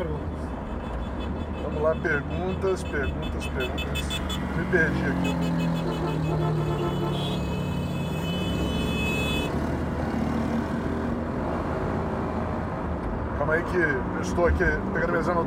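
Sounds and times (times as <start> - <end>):
car horn honking: 0.0 - 9.6
heavy traffic rumble: 0.0 - 15.4
speech: 1.8 - 7.6, 13.5 - 15.4.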